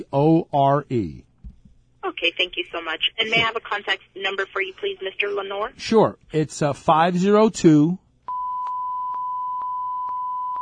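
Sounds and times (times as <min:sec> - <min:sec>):
speech: 0:00.0 - 0:01.3, 0:02.2 - 0:08.0
censor bleep tone covering a cell phone number: 0:08.3 - 0:10.6.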